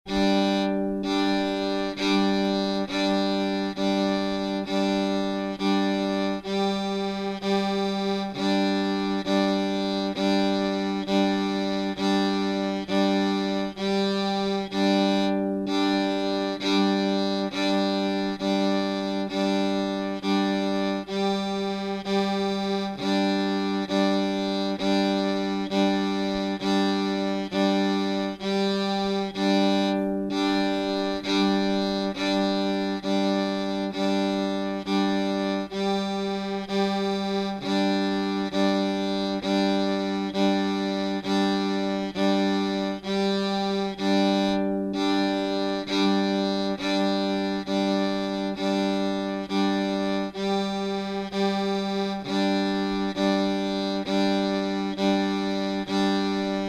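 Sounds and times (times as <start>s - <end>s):
base melody: 0.1s - 56.6s.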